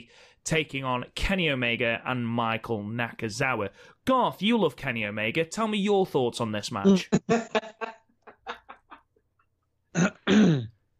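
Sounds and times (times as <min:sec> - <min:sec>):
speech: 0:00.0 - 0:07.6
laughter: 0:07.1 - 0:09.1
man clearing his throat: 0:09.9 - 0:10.8.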